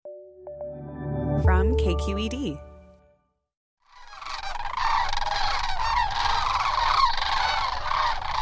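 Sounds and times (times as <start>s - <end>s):
speech: 1.4s - 2.7s
huge flock of sandhill cranes calling as they touch down at a wildlife preserve: 3.8s - 8.4s.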